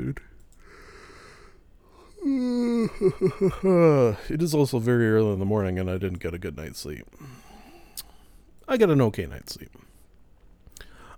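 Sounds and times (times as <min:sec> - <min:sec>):
speech: 0:00.1 - 0:00.3, 0:02.8 - 0:07.4, 0:08.7 - 0:09.8
person yawning: 0:02.0 - 0:04.2.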